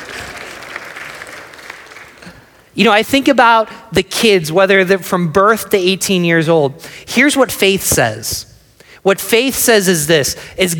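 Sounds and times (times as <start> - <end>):
crowd applauding: 0.0 - 2.6
speech: 2.8 - 10.7.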